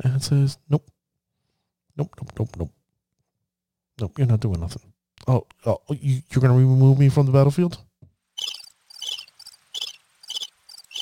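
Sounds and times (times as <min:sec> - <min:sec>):
speech: 0:00.0 - 0:01.0, 0:02.0 - 0:02.8, 0:04.0 - 0:07.9
crickets chirping: 0:08.4 - 0:11.0.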